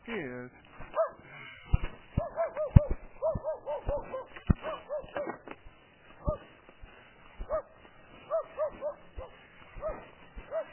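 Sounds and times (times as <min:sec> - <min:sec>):
dog barking and yipping in sharp high-pitched bursts: 0:00.9 - 0:01.2, 0:02.2 - 0:05.4, 0:07.4 - 0:10.7.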